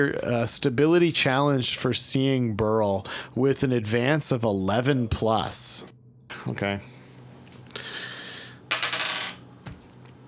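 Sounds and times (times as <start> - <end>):
speech: 0.0 - 7.0
two dice rolling on a hard table: 8.7 - 9.8.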